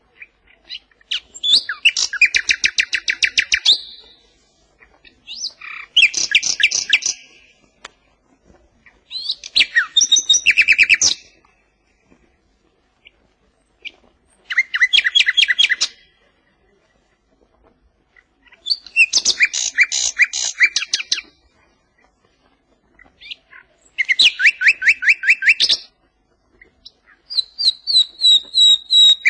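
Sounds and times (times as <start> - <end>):
western nightingale singing: 0.0 - 7.9, 8.8 - 11.6, 13.0 - 16.2, 18.1 - 21.4, 23.0 - 29.2.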